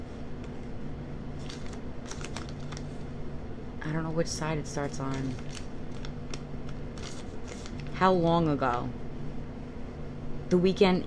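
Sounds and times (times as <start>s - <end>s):
ripped paper crinkling: 1.4s - 3.0s, 4.8s - 8.0s
speech: 3.9s - 5.6s, 8.0s - 9.0s, 10.5s - 11.0s.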